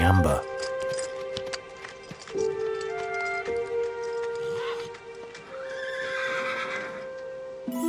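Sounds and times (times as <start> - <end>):
horse hooves clip-clopping on a hard surface: 0.0 - 7.6
speech: 0.1 - 0.6
horse whinnying with a long wavering neigh: 4.4 - 7.2.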